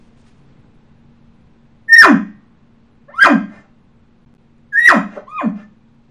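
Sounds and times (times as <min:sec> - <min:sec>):
imitated elk bull barks made by an elk caller: 0:01.9 - 0:02.4, 0:03.1 - 0:03.6, 0:04.8 - 0:05.7.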